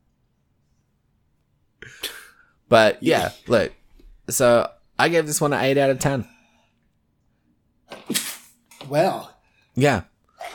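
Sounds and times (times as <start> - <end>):
person sneezing: 1.8 - 2.4, 8.0 - 8.5
speech: 2.7 - 6.4, 8.9 - 10.5.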